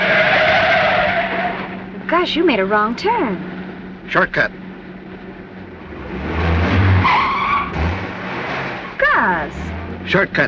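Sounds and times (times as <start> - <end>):
car tire squeal skidding off road into a shallow pond: 0.0 - 2.0, 6.0 - 10.0
rough car engine rumble: 0.0 - 10.4
speech: 2.2 - 4.6, 9.2 - 10.4.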